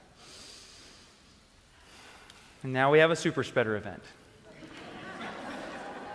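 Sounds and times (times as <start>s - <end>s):
slow deep breath drawn in and let out: 0.0s - 2.6s
speech: 2.6s - 4.2s
laughter: 4.5s - 6.1s.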